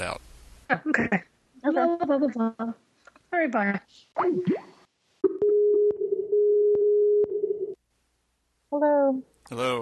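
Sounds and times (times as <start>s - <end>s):
speech: 0.0s - 4.7s, 8.7s - 9.8s
phone line tone after a call hang-up: 5.3s - 7.8s.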